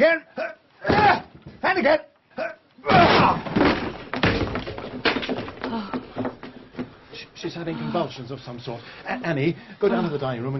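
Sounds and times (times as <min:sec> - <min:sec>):
two men bashing against a solid door to force it open: 0:00.8 - 0:01.6, 0:02.9 - 0:07.0
speech: 0:01.8 - 0:03.0, 0:07.4 - 0:10.5.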